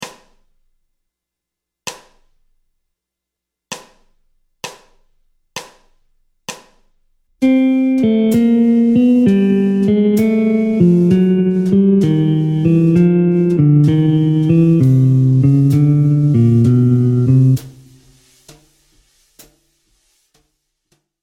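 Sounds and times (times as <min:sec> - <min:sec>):
descending bebop scale in C major on jazz guitar: 0:07.4 - 0:18.2.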